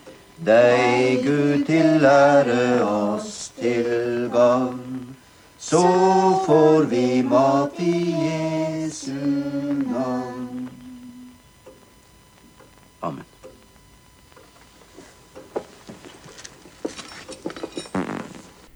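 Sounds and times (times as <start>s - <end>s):
vocal sounds: 0.0s - 11.6s
speech: 0.4s - 4.8s, 5.7s - 8.3s
rustling: 14.5s - 18.7s
loud low buzzing fart: 17.4s - 18.7s.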